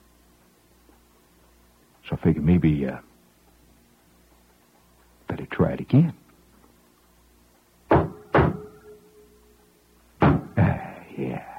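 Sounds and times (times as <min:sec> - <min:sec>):
speech: 0:02.1 - 0:03.1, 0:05.7 - 0:06.2
knocking on a door: 0:07.9 - 0:08.6, 0:10.2 - 0:10.6.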